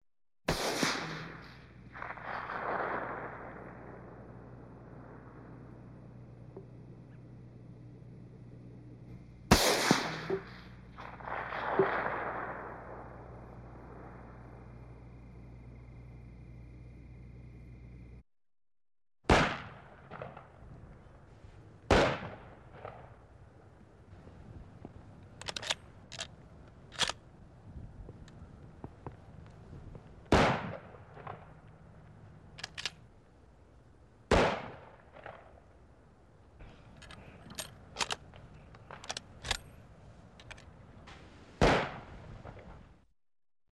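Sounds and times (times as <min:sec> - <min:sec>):
rifle shots: 0:00.5 - 0:06.5, 0:09.4 - 0:14.7, 0:19.3 - 0:20.6, 0:21.8 - 0:23.3, 0:25.4 - 0:26.3, 0:26.9 - 0:27.2, 0:30.3 - 0:31.8, 0:32.4 - 0:33.1, 0:34.3 - 0:35.6, 0:36.6 - 0:39.8, 0:41.6 - 0:42.7
rifle reloading: 0:25.2 - 0:27.2, 0:32.4 - 0:33.1, 0:36.6 - 0:40.7.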